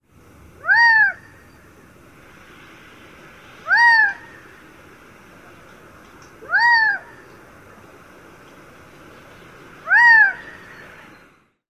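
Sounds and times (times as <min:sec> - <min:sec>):
Gambel's Quail calls: 0:00.6 - 0:01.3, 0:03.6 - 0:04.4, 0:06.4 - 0:07.2, 0:09.8 - 0:11.1.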